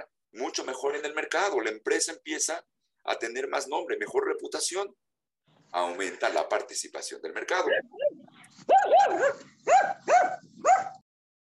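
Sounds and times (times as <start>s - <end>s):
speech: 0.4s - 5.1s, 5.7s - 10.9s
dog barking: 7.6s - 11.0s.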